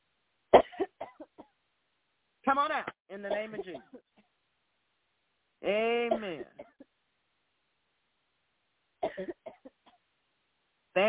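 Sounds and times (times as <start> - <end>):
deep forceful cough: 0.6 - 1.5, 3.3 - 4.2, 6.1 - 6.9, 9.0 - 10.0
speech: 2.5 - 4.2, 5.6 - 6.6.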